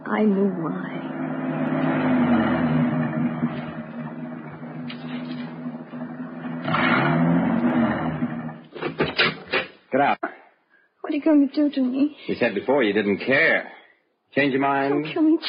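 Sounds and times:
speech: 0:00.1 - 0:02.1, 0:09.9 - 0:10.3, 0:11.1 - 0:15.4
car engine climbing up into the Hollywood Hills: 0:00.4 - 0:09.5.

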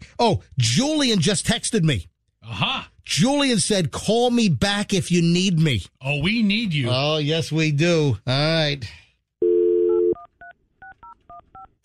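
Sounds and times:
speech: 0:00.2 - 0:02.1, 0:03.1 - 0:09.0
phone dial tone: 0:09.4 - 0:10.3.

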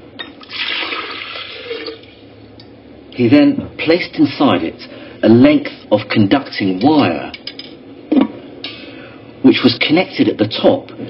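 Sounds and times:
water pouring into a glass jar in a laboratory: 0:00.4 - 0:02.2
speech: 0:03.2 - 0:07.4, 0:09.4 - 0:11.0.

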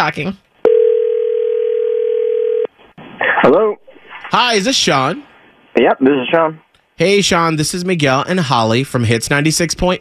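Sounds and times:
speech: 0:00.0 - 0:00.5, 0:03.4 - 0:10.0
telephone dial tone while placing a call: 0:00.7 - 0:02.7.

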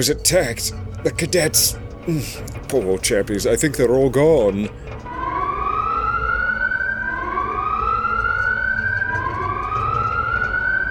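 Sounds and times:
speech: 0:00.0 - 0:05.0
low rumbling background: 0:00.0 - 0:10.8
ship emergency electronic alarm wailing with rising pitch: 0:04.8 - 0:10.8.

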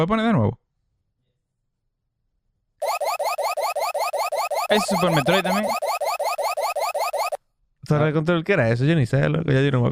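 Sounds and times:
speech: 0:00.0 - 0:00.6, 0:04.7 - 0:05.9, 0:07.9 - 0:09.9
electronic video game alarm of rising synthesized tones: 0:02.8 - 0:07.4.

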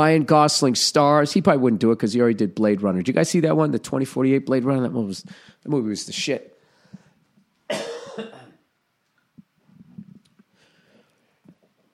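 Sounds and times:
speech: 0:00.0 - 0:06.5
person coughing: 0:07.7 - 0:08.6.

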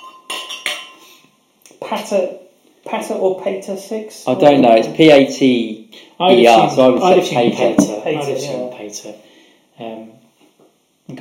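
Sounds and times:
glasses clinking in a toast: 0:00.0 - 0:01.0
speech: 0:01.9 - 0:10.2.

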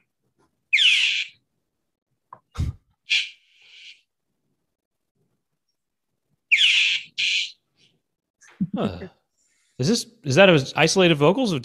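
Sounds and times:
bird squawking on a rooftop: 0:00.7 - 0:01.4, 0:03.1 - 0:04.1, 0:06.5 - 0:07.6
speech: 0:08.8 - 0:09.2, 0:09.8 - 0:11.6.

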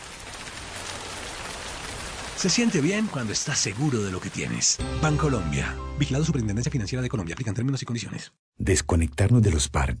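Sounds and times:
rain pattering on a window: 0:00.0 - 0:04.7
speech: 0:02.4 - 0:09.9.

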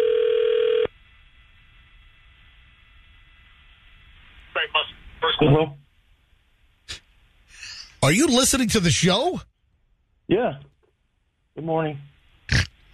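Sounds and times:
telephone dial tone through a phone switchboard line: 0:00.0 - 0:00.9
speech: 0:05.4 - 0:05.8, 0:08.0 - 0:09.5, 0:10.3 - 0:10.7, 0:11.6 - 0:12.6.

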